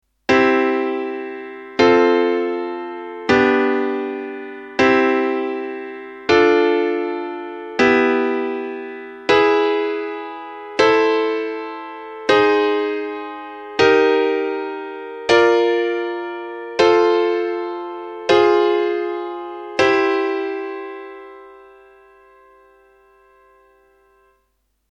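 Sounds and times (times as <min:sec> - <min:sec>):
chords: 0:00.3 - 0:24.5.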